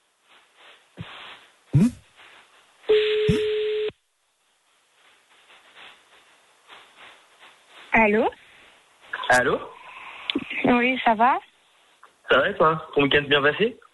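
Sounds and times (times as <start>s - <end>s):
faint hiss: 0.0s - 3.5s, 4.1s - 13.9s
phone line noise crackles: 0.0s - 13.9s
speech: 1.8s - 2.0s, 8.0s - 8.4s, 9.3s - 9.7s, 10.7s - 11.5s, 12.3s - 13.8s
ringback tone on an outgoing phone call: 2.9s - 3.9s.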